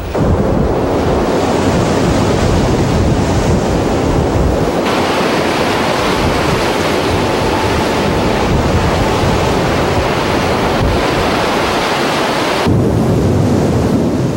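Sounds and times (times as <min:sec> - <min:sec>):
heavy ocean waves crashing in a storm at Heard Island: 0:00.0 - 0:14.3
strong storm wind buffeting the microphone: 0:00.0 - 0:14.3.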